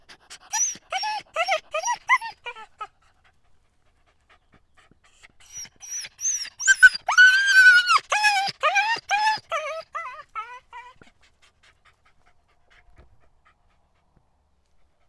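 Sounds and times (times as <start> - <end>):
dogs yelping: 0.3 - 2.9, 5.4 - 11.0.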